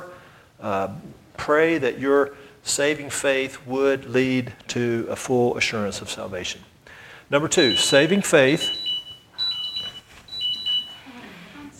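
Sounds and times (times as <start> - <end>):
faint room noise: 0.0 - 11.7
speech: 0.6 - 6.7, 7.3 - 8.8
electronic alarm beeping in short high-pitched tones: 7.5 - 11.1.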